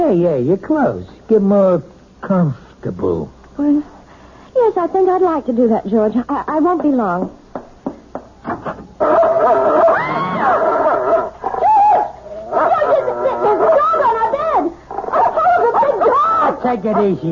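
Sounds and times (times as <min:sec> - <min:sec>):
speech: 0:00.0 - 0:04.0, 0:04.6 - 0:07.4, 0:16.6 - 0:17.2
dog whining and whimpering: 0:09.0 - 0:14.3
dog barking: 0:09.0 - 0:16.6.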